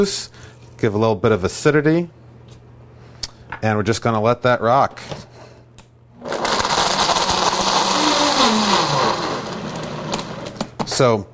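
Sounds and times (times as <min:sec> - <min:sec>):
speech: 0:00.0 - 0:02.2, 0:03.6 - 0:05.3, 0:11.0 - 0:11.3
blender motor crushing ice and liquid: 0:06.2 - 0:10.8.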